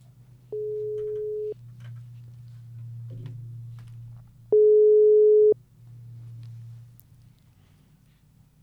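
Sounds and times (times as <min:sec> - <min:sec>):
constant low hum: 0:00.3 - 0:07.7
telephone ringback tone as a call is placed: 0:00.6 - 0:01.6, 0:04.5 - 0:05.6.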